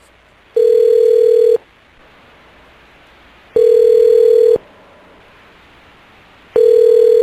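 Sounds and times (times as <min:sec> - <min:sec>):
unanswered telephone ringing: 0:00.6 - 0:01.6, 0:03.6 - 0:04.6, 0:06.6 - 0:07.2.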